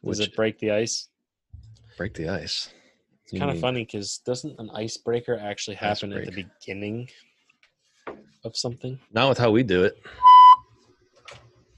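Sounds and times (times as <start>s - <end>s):
speech: 0.0s - 1.1s, 2.0s - 7.3s, 8.4s - 10.3s
loud censor beep: 10.2s - 10.6s.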